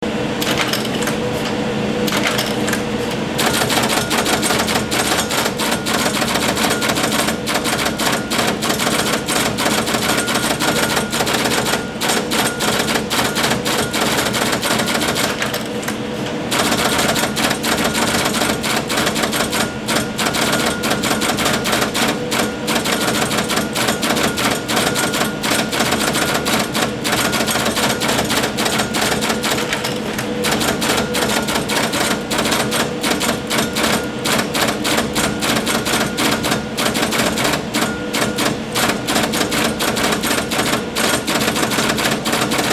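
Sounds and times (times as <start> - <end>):
IBM 026 key punch machine: 0.4 - 42.7.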